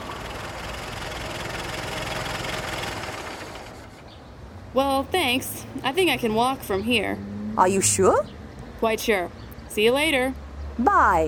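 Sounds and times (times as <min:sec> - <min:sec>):
car engine humming and idling: 0:00.0 - 0:04.1
speech: 0:04.7 - 0:11.2.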